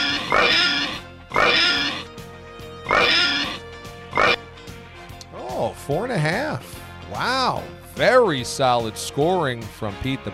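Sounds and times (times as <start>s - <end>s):
pig oinking and squealing: 0.0s - 2.1s, 2.9s - 4.4s
speech: 0.3s - 0.7s, 5.9s - 10.3s.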